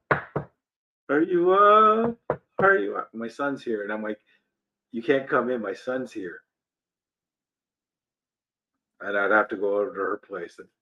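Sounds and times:
speech: 0:01.1 - 0:06.4, 0:09.0 - 0:10.7
knocking on a wooden door: 0:02.0 - 0:02.8.

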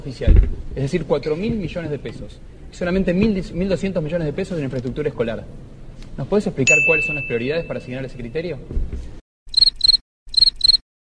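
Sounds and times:
speech: 0:00.0 - 0:09.2
cricket chirping: 0:09.5 - 0:10.8.

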